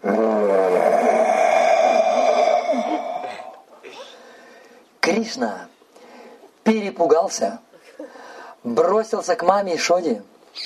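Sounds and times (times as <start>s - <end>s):
human voice imitating an animal roar: 0.0s - 3.7s
speech: 5.2s - 5.7s, 6.7s - 7.6s, 8.6s - 10.6s.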